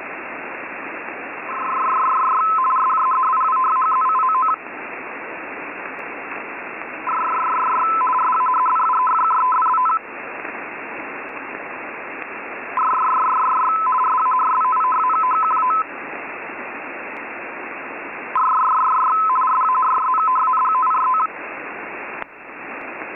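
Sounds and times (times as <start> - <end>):
F1B radio data bursts on 28100 kHz at 51 baud: 1.4 - 4.7, 6.3 - 10.5, 12.7 - 15.9, 18.3 - 21.4.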